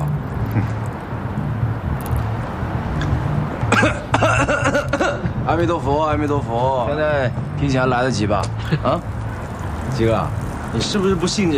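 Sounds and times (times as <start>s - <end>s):
steady low outdoor rumble: 0.0s - 11.5s
short forced coughs: 3.7s - 5.3s
speech: 5.6s - 9.2s, 10.0s - 11.5s.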